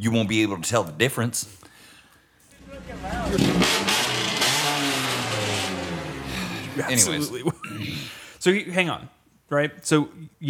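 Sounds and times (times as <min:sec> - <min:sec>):
speech: 0:00.0 - 0:01.7, 0:02.9 - 0:03.9, 0:06.8 - 0:10.4
car engine revving: 0:02.7 - 0:06.8
laughter: 0:06.2 - 0:08.3.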